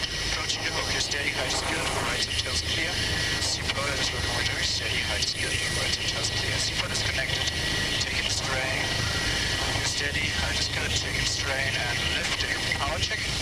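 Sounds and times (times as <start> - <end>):
helicopter hovering: 0.0 - 13.4
voices: 0.0 - 13.4.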